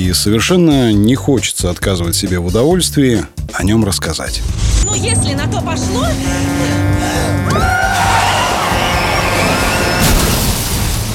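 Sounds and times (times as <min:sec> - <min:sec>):
speech: 0:00.1 - 0:06.8
car tires screeching in a skid: 0:04.4 - 0:10.6
sustained roar of noise and debris: 0:06.1 - 0:11.1
loud car crash: 0:08.0 - 0:11.1.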